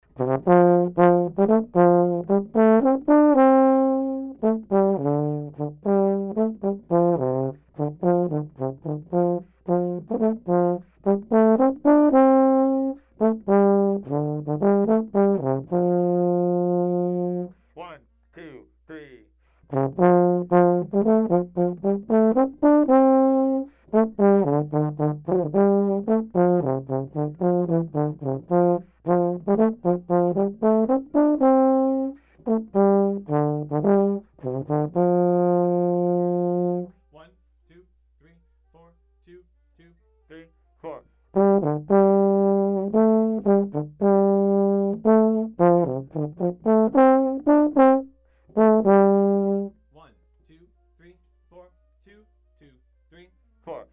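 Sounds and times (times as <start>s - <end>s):
trombone solo: 0.0s - 17.6s, 19.7s - 36.9s, 41.3s - 49.8s.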